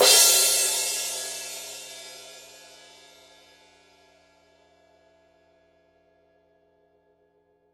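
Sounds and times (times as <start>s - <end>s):
18-inch Paiste heavy crash cymbal hit on the edge: 0.0s - 3.4s.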